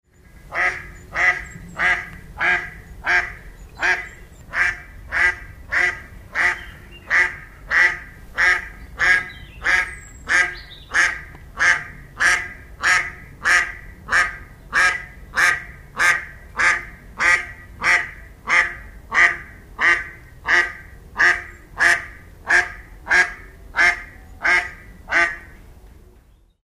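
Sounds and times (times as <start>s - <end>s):
mallard Anas platyrhynchos: 0.5s - 25.5s.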